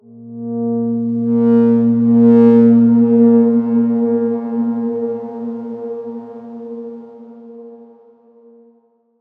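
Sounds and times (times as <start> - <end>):
dark swarm synth drone note: 0.0 - 8.6.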